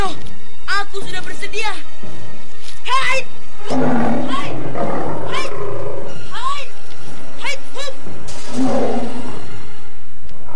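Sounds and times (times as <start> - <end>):
speech: 1.0 - 4.9
calf-sized tiger giving a deep growling roar: 3.6 - 6.2, 8.4 - 9.5.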